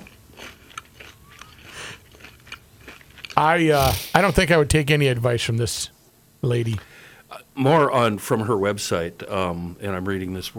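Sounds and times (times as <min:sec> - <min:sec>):
fried onion ring being bitten and chewed: 0:00.0 - 0:04.6
speech: 0:03.4 - 0:10.5.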